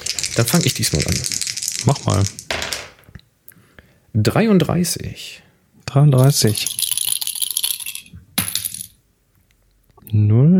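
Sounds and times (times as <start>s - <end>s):
dice numbered 0 to 100 rattling and tumbling across a dice tray: 0.0s - 3.1s, 6.2s - 9.0s
speech: 0.4s - 2.4s, 4.2s - 6.8s.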